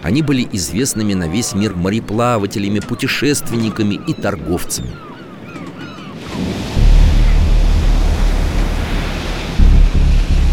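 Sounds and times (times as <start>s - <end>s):
speech: 0.0s - 5.1s
heavy sea waves crashing: 0.0s - 10.5s
stormy wind roaring: 5.4s - 10.5s.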